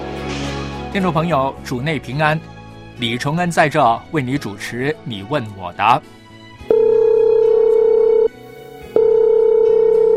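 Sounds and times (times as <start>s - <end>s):
speech: 0.9s - 6.2s
telephone ringing: 6.7s - 8.3s, 9.0s - 10.1s.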